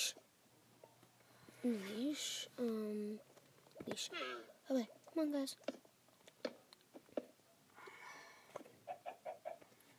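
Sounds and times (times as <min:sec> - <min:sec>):
speech: 0:01.6 - 0:05.8
chicken clucking: 0:08.5 - 0:09.8.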